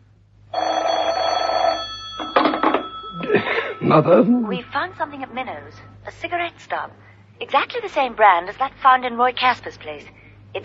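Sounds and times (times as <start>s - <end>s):
telephone bell ringing: 0.5s - 4.0s
speech: 3.8s - 10.6s.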